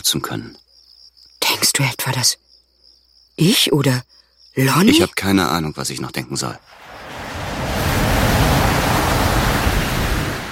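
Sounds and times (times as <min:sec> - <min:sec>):
speech: 0:00.0 - 0:00.7, 0:01.8 - 0:02.5, 0:03.4 - 0:07.0
ocean surf washing onto a beach: 0:06.7 - 0:10.5.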